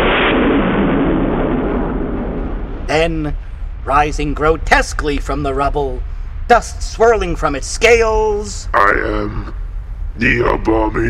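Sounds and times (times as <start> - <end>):
broken earth exploding after a missile strike, rumbling roar: 0.0 - 5.3, 8.6 - 11.0
speech: 3.0 - 9.6, 10.2 - 11.0.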